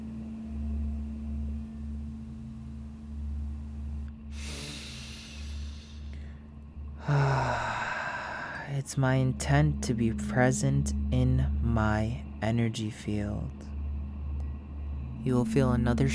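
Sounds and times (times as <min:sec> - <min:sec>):
steady low musical drone: 0:00.0 - 0:16.1
deep breath drawn in and let out: 0:04.3 - 0:08.8
speech: 0:08.8 - 0:13.7, 0:15.2 - 0:16.1.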